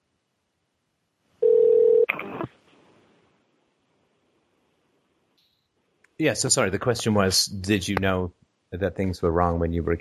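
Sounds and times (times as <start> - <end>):
electronic telephone tone: 1.4 - 2.1
speech: 6.2 - 10.0.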